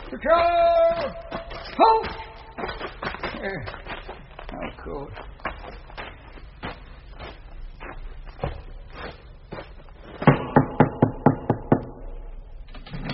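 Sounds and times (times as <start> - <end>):
speech: 0.2 - 3.8, 4.6 - 5.3
loud sharp knocks on a gate: 10.3 - 12.0.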